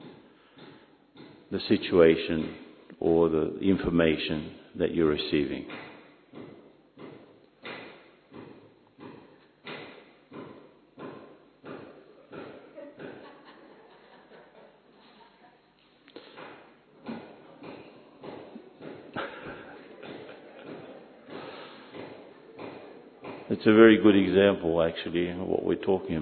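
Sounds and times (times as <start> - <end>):
speech: 1.5 - 5.9, 23.6 - 26.1
hammering: 5.7 - 13.2, 16.3 - 23.7
laughter: 12.6 - 15.7, 19.0 - 21.3.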